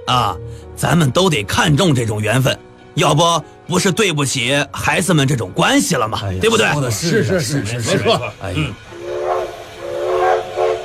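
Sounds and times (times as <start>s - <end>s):
speech: 0.1s - 8.9s
laughter: 7.0s - 8.7s
train whistle: 8.7s - 10.8s.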